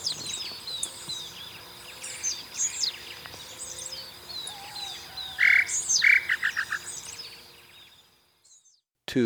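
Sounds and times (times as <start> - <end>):
high bird calls in Ecuador: 0.0 - 8.6
Tataupa Tinamou calling in Ecuador: 4.4 - 6.9.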